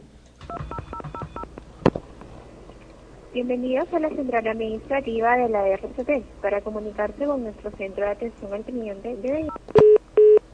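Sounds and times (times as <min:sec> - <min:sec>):
telephone keypad tones from pressing zero: 0:00.4 - 0:01.5, 0:09.4 - 0:10.4
speech: 0:03.4 - 0:09.6.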